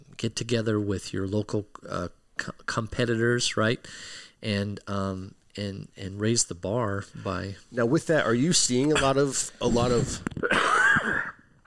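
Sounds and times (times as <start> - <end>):
speech: 0.2 - 10.6
harsh raspy wheezy cough: 10.4 - 11.6.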